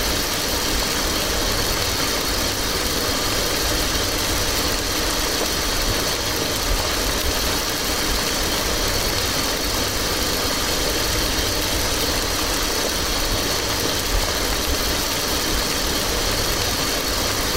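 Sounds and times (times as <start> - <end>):
rain tapping on a window: 0.1 - 17.5.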